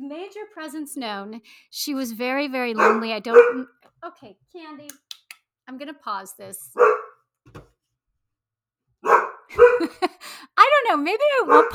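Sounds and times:
speech: 0.1s - 7.7s, 9.5s - 11.7s
female dog barking at a mailman at the door: 2.8s - 3.8s, 6.8s - 7.2s, 9.0s - 10.1s, 11.4s - 11.7s
laughter: 9.5s - 10.4s.

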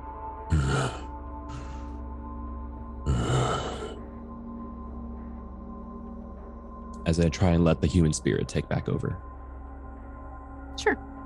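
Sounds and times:
person breathing heavily while calming down: 0.5s - 2.0s, 3.1s - 4.0s
speech: 7.1s - 9.4s.

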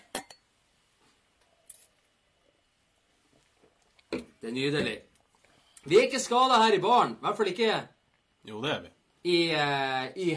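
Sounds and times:
glasses clinking in a toast in a bar: 0.0s - 0.5s
speech: 4.4s - 5.1s, 5.8s - 10.3s.

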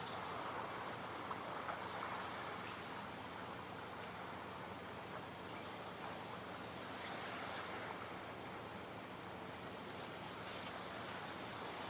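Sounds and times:
light waves washing: 0.0s - 11.8s.

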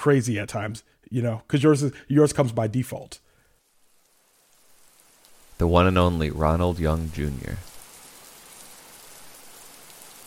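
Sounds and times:
speech: 0.0s - 3.2s, 5.6s - 7.7s
rain pattering on a surface: 3.4s - 10.2s.

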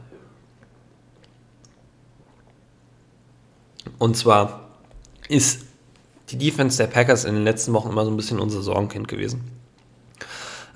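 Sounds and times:
steady low electrical hum: 0.0s - 10.7s
wet mouth clicks from sipping water: 0.6s - 2.6s
speech: 4.0s - 4.6s, 5.3s - 5.7s, 6.3s - 9.6s.

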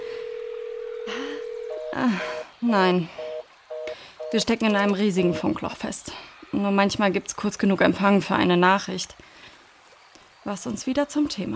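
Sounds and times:
steady electronic phone tone: 0.0s - 2.5s, 3.2s - 4.4s, 5.2s - 5.5s
phone keypad beeps: 1.4s - 2.0s, 3.2s - 5.6s
speech: 2.0s - 3.2s, 4.3s - 9.3s, 10.4s - 11.5s.

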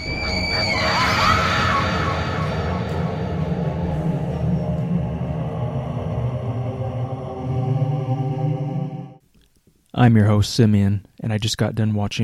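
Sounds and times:
shrill piercing sinister scream: 0.0s - 5.0s
eerie droning wail: 0.0s - 9.2s
speech: 10.0s - 12.2s.

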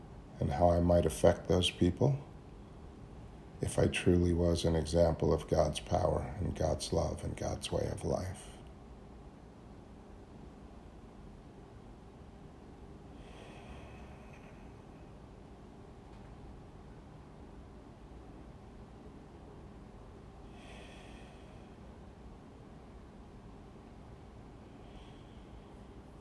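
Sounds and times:
steady low hum: 0.0s - 26.1s
speech: 0.4s - 2.3s, 3.6s - 8.5s
person taking slow breaths: 13.0s - 15.4s, 20.4s - 22.2s, 24.5s - 26.1s.

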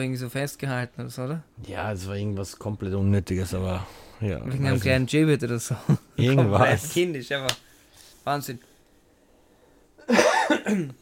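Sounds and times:
speech: 0.0s - 7.6s, 8.2s - 8.7s, 10.1s - 11.0s
harsh rasping coughs: 10.0s - 11.0s.

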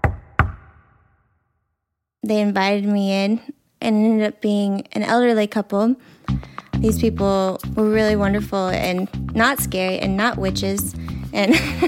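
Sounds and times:
knocking on a wooden door: 0.0s - 0.8s
speech: 2.2s - 11.8s.

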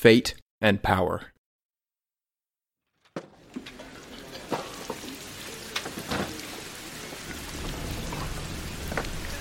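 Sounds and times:
speech: 0.0s - 1.3s
rain pouring: 3.3s - 9.3s
sharp drips and spatters of rain: 3.4s - 9.3s.

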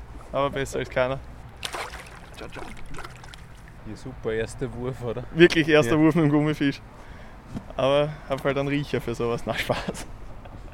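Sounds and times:
speech: 0.3s - 1.3s, 2.4s - 10.2s
water lapping and trickling against a small fishing boat on the Alte Donau: 1.6s - 3.8s.

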